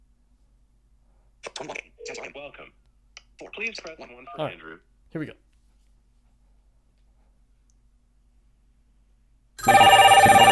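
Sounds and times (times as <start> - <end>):
speech: 1.6 - 2.8, 3.4 - 5.4
several telephones ringing at once including wireless phones: 9.6 - 10.5.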